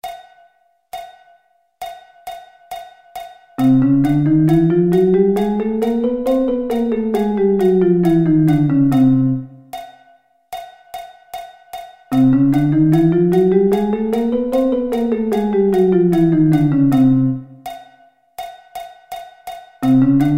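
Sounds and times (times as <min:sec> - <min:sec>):
chromatic scale: 0:03.6 - 0:09.7, 0:12.1 - 0:17.8, 0:19.8 - 0:20.3.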